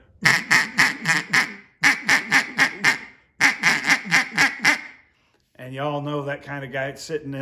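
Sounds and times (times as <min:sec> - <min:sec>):
duck call grunted without air giving raspy quacks: 0:00.2 - 0:05.0
speech: 0:05.8 - 0:07.4.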